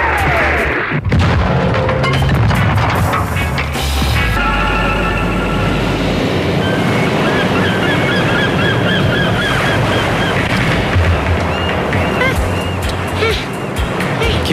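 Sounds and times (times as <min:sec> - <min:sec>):
heavy booming explosions and dense rumbling blasts: 0:00.0 - 0:14.5
fighter jets roaring while firing: 0:04.1 - 0:14.5.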